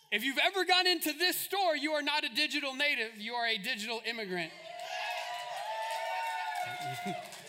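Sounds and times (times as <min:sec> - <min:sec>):
speech: 0:00.1 - 0:04.7, 0:06.6 - 0:07.4
large audience clapping and cheering: 0:04.5 - 0:07.4.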